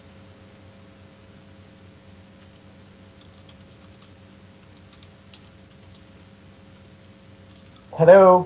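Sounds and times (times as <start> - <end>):
hiss: 0.0 - 8.4
typing on a computer keyboard: 2.4 - 6.2, 7.4 - 7.9
speech: 8.0 - 8.4.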